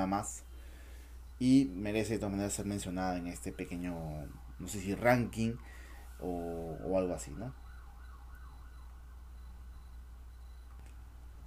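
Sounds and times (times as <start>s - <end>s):
speech: 0.0s - 0.5s, 1.4s - 7.6s
ambulance siren wailing: 1.5s - 9.8s.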